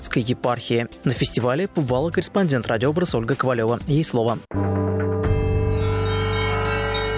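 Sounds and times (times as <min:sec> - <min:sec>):
speech: 0:00.2 - 0:04.8
church bells ringing at a bell-ringing festival in a small town: 0:05.6 - 0:07.1.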